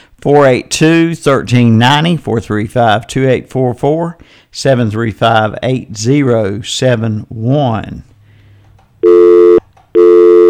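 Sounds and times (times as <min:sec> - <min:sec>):
speech: 0:00.2 - 0:08.1
telephone line tones on an incoming call to a call-in line: 0:09.0 - 0:10.4.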